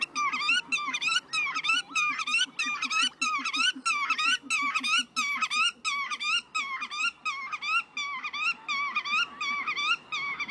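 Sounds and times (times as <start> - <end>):
Black-tailed godwit calling with harmonic notes: 0.0 - 10.5.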